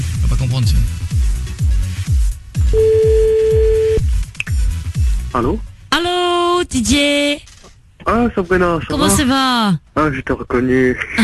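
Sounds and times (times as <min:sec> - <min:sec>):
speech: 0:00.0 - 0:01.0, 0:05.4 - 0:07.5, 0:08.1 - 0:11.2
rhythmic low thumping beat: 0:01.1 - 0:05.3
telephone ringing tone as a call is placed: 0:02.7 - 0:04.0.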